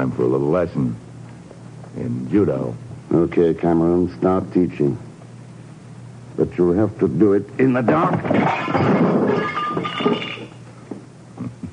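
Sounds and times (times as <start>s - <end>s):
speech: 0.0s - 1.1s, 2.0s - 5.1s, 6.4s - 10.2s
glass shattering with ringing tones: 7.9s - 10.6s
lamp being smashed: 7.9s - 10.6s
falling glass shards tinkling and clinking: 8.2s - 10.6s.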